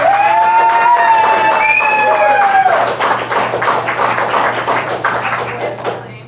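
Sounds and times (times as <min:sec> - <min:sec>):
people cheering and whooping: 0:00.0 - 0:03.1
audience applauding to vote: 0:00.0 - 0:06.1.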